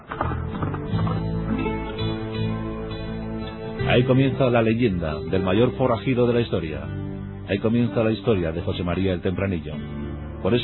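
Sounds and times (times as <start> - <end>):
horse hooves clip-clopping: 0.0 - 2.4
speech: 4.0 - 10.6.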